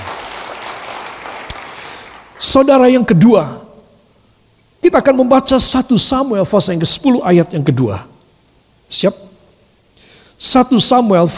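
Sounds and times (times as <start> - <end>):
single sharp clap: 0.0 - 2.3
crowd applause: 0.0 - 2.4
speech: 2.4 - 3.6, 4.8 - 8.1, 8.9 - 9.3, 10.4 - 11.3.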